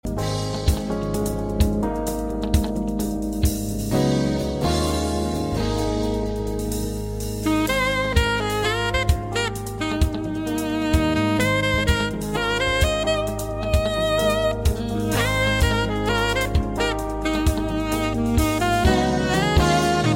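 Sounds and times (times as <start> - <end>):
jazz saxophone: 0.0 - 20.1.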